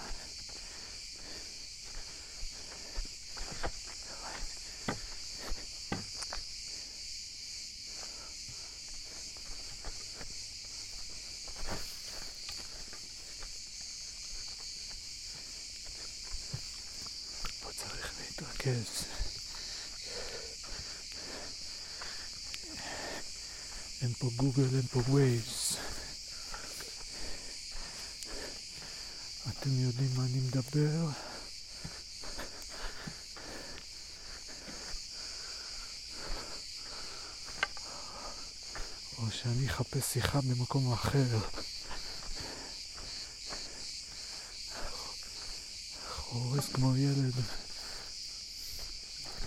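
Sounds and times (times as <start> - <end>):
scattered footsteps: 0.0 - 6.9, 7.9 - 29.7, 30.6 - 39.0, 41.0 - 49.4
chorus of crickets chirping in a forest at night: 0.0 - 49.4
speech: 18.7 - 19.1, 24.2 - 25.6, 29.6 - 31.3, 39.5 - 41.7, 46.7 - 47.6.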